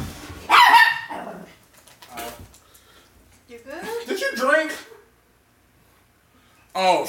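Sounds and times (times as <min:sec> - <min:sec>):
boxer dog barking: 0:00.5 - 0:01.5.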